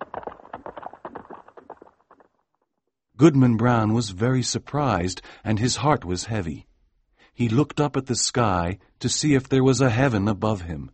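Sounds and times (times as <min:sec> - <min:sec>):
horses galloping: 0:00.0 - 0:02.3
speech: 0:03.2 - 0:06.7, 0:07.4 - 0:10.9.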